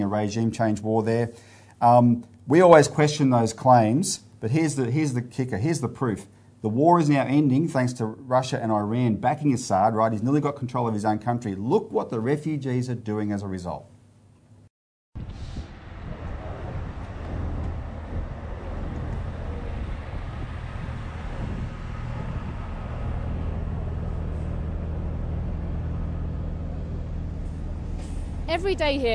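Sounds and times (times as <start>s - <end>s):
speech: 0.1s - 13.9s, 28.6s - 29.1s
dense rumble of heavy road traffic of cars, buses and lorries: 15.2s - 29.1s
air brake hiss: 15.3s - 15.8s, 28.0s - 28.4s
vehicle engines idling and moving: 15.6s - 29.1s.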